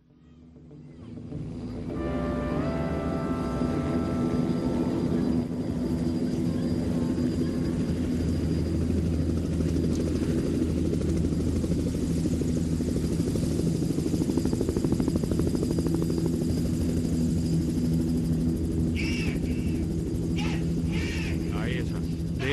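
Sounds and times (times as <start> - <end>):
helicopter rotor drone: 0.0 - 22.5
music intro: 1.4 - 5.6.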